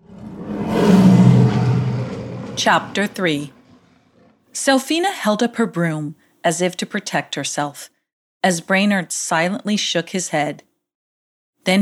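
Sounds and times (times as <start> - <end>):
lion roaring into a deep rumbling growl: 0.0 - 4.4
speech: 2.6 - 3.6, 4.6 - 10.7, 11.6 - 11.8.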